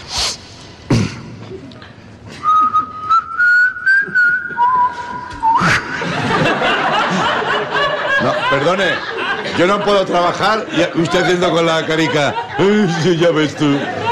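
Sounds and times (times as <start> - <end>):
person whistling a short melodic tune: 2.4 - 6.0
laughter: 5.5 - 14.1
speech: 8.7 - 14.0.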